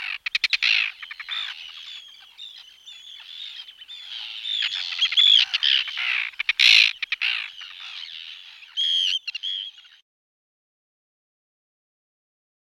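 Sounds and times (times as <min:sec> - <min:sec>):
Arctic tern calls: 0:00.0 - 0:10.0.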